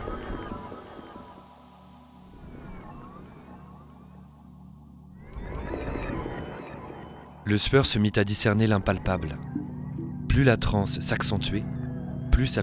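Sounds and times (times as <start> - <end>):
whale song moaning calls: 0.0 - 7.4, 8.9 - 10.6
speech: 7.5 - 9.6, 10.4 - 11.8, 12.4 - 12.6.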